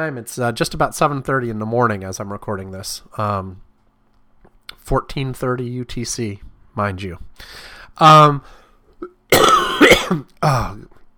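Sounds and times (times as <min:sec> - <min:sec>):
speech: 0:00.0 - 0:03.6, 0:04.9 - 0:10.9
person coughing from a cold: 0:09.0 - 0:10.9.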